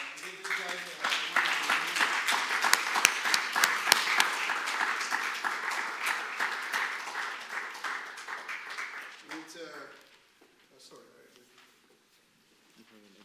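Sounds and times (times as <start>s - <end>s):
crowd applauding: 0.0s - 9.9s.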